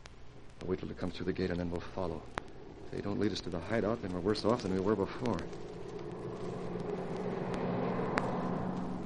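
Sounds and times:
speech: 0.7s - 5.8s
car engine rumbling: 2.0s - 9.0s.

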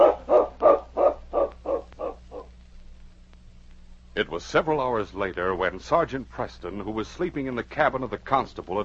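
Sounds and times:
dog barking: 0.0s - 2.5s
speech: 4.2s - 8.8s.

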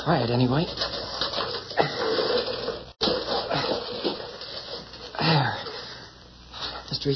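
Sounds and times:
speech: 0.0s - 1.0s
bucket of water shoved across a floor, gritty scraping: 0.5s - 6.0s.

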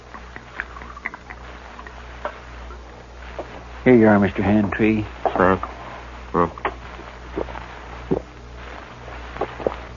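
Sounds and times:
low steady hum: 0.0s - 9.9s
liquid poured from a jug into a cup: 0.1s - 2.0s
speech: 3.8s - 5.7s, 6.4s - 6.6s.

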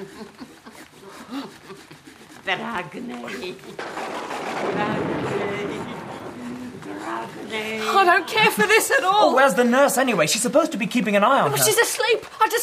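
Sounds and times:
laughter: 0.0s - 4.0s, 4.6s - 10.3s
saw cutting through something: 0.0s - 11.8s
speech: 2.5s - 5.6s, 7.3s - 12.6s
voices talking: 4.6s - 10.4s.

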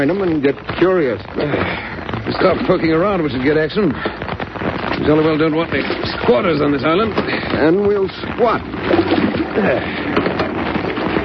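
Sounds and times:
speech: 0.0s - 10.3s
surf waves breaking near the shore of an island: 0.0s - 11.2s.

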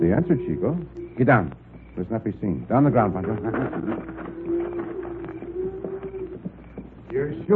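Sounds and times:
speech: 0.1s - 4.4s, 7.1s - 7.5s
herd of cattle hooves clattering: 2.0s - 7.5s.

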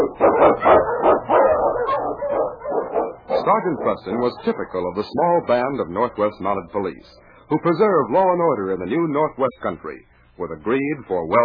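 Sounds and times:
husky sled dog barking: 0.0s - 4.6s
speech: 0.1s - 1.0s, 3.5s - 11.4s.

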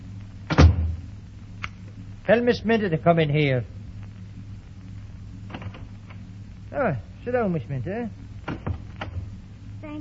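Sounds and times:
door thump with rattling latch: 0.5s - 1.0s
speech: 2.3s - 3.8s, 6.8s - 8.7s.

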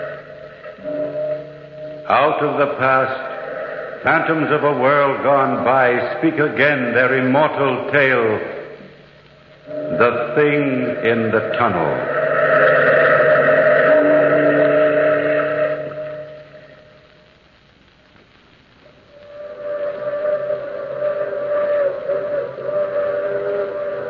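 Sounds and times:
steam express train whistle at night: 0.0s - 6.1s, 9.7s - 16.8s, 19.1s - 24.0s
speech: 2.1s - 3.3s, 4.0s - 8.6s, 10.0s - 12.1s.

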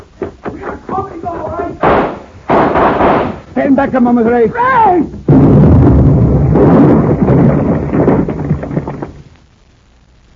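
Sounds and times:
hand grenade exploding in a fight: 1.8s - 3.5s, 5.3s - 9.1s
speech: 3.6s - 5.2s.

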